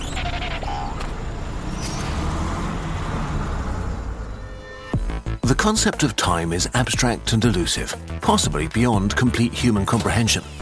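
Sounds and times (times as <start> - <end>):
bus engine rumbling through busy street traffic: 0.0 - 5.0
speech: 5.5 - 10.5.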